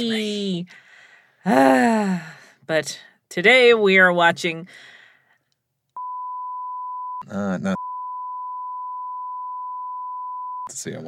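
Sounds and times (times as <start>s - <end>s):
speech: 0.0s - 0.8s, 1.4s - 4.9s, 7.2s - 7.8s, 10.7s - 11.0s
censor beep: 6.0s - 10.7s.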